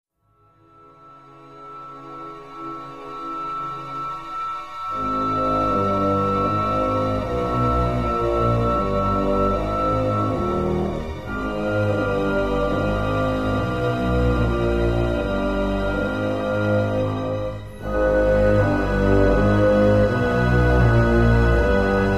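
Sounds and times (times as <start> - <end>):
suspense music: 0.4 - 22.1.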